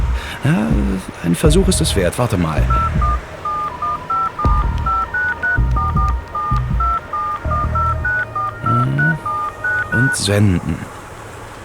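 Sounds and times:
low thumps and rumbling handling noise: 0.0s - 7.1s
speech: 0.4s - 3.2s, 10.0s - 10.9s
short clear mobile phone keypad dialing tones: 2.6s - 10.2s.

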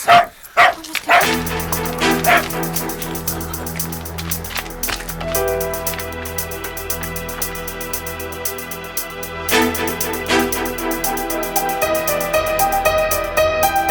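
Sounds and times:
dog barking: 0.0s - 1.3s, 2.2s - 2.5s
steady musical backing: 1.1s - 13.8s.

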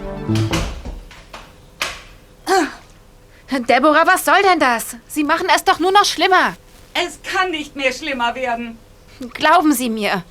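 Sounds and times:
woman's quick footsteps into a treatment room: 0.0s - 2.3s, 5.6s - 7.1s
speech: 0.3s - 0.6s, 3.6s - 10.3s
treatment room door pulled shut: 0.3s - 1.3s.

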